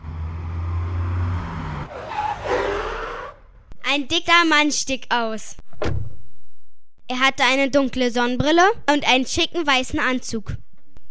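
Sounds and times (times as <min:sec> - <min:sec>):
tires squealing as the car brakes to a stop: 0:00.0 - 0:03.7
car engine rumbling: 0:00.0 - 0:03.8
speech: 0:03.9 - 0:06.0, 0:07.1 - 0:10.6.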